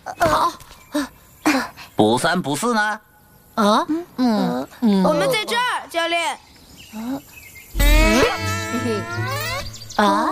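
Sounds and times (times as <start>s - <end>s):
speech: 2.0s - 7.3s, 8.3s - 10.3s
mosquitoes buzzing: 7.7s - 10.3s.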